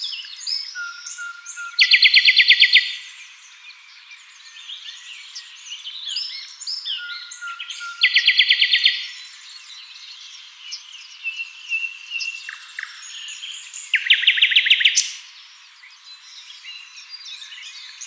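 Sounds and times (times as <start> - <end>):
Luscinia megarhynchos trilling: 0.0 - 3.2, 6.0 - 9.4, 11.3 - 15.3
light outdoor background hiss: 0.0 - 18.0.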